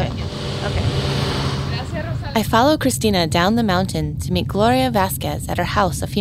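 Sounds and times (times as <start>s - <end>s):
car engine and road noise driving down a mountain in Humacao: 0.0s - 3.0s
speech: 2.4s - 6.2s.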